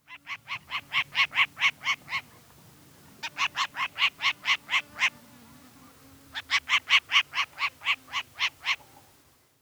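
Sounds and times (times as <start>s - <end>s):
Short-eared Owl: 0.1s - 2.5s, 3.2s - 5.2s, 6.3s - 9.0s.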